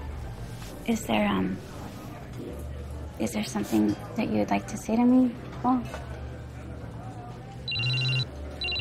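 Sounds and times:
speech: 0.9 - 1.7, 2.4 - 6.1
mobile phone ringing with electronic trill: 7.7 - 8.8.

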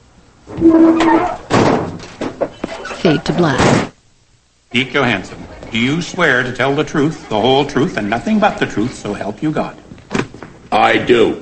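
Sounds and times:
heavy truck back door grinding and squealing scrape: 0.5 - 3.0
speech: 0.6 - 1.4, 3.0 - 3.9, 4.7 - 9.9, 10.7 - 11.3
heavy truck back door metallic slam: 0.6 - 2.1.

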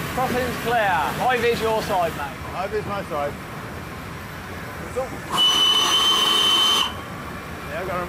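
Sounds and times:
speech: 0.2 - 3.5, 5.0 - 6.0, 7.8 - 8.0
steam locomotive whistle blowing: 5.3 - 7.1.

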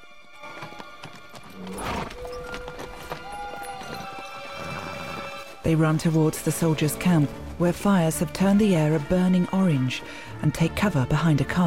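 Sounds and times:
horses' hooves clip-clopping past: 0.3 - 10.9
horse whinnying: 0.4 - 5.6
speech: 5.6 - 11.6.

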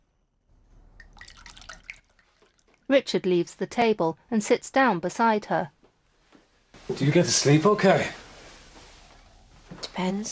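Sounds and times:
clinking drips: 1.0 - 2.9
wine poured into a glass: 1.0 - 2.9
speech: 2.9 - 5.8, 6.9 - 8.2, 10.0 - 10.3.

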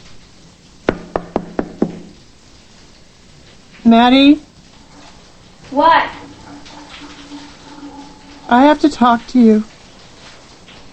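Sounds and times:
knocking on a closed bedroom door: 0.9 - 2.2
speech: 3.9 - 4.5, 5.8 - 6.2, 8.5 - 9.7.

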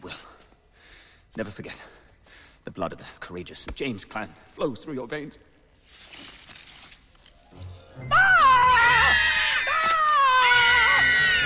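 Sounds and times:
speech: 1.4 - 2.0, 2.6 - 6.1, 8.0 - 8.3
slugs screaming in shrill wavering screams: 8.0 - 11.4.

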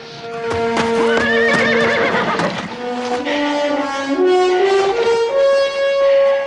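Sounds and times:
hooves of charging horses thudding: 0.2 - 5.7
horses neighing: 0.3 - 3.7.

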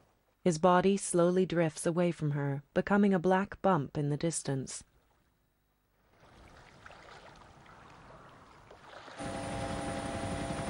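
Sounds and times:
speech: 0.4 - 4.9
helicopter flying over the ocean during a search: 9.2 - 10.6
steady helicopter whine: 9.2 - 10.6.

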